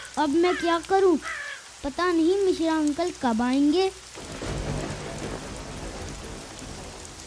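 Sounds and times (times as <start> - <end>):
heavy rain falling: 0.0 - 7.2
speech: 0.2 - 4.4
loud thunder: 4.2 - 7.2.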